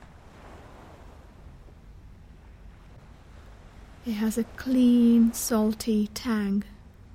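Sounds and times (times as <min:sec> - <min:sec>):
ocean surf roaring against the shore: 0:00.0 - 0:06.9
faint breezy hiss: 0:00.0 - 0:07.1
speech: 0:04.0 - 0:06.8.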